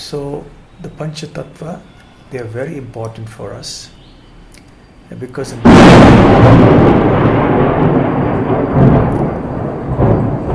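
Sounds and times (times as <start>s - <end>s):
speech: 0.1s - 4.0s, 5.1s - 7.3s
steady hiss of heavy downpour: 5.4s - 10.5s
thunder rumbling: 5.4s - 10.5s.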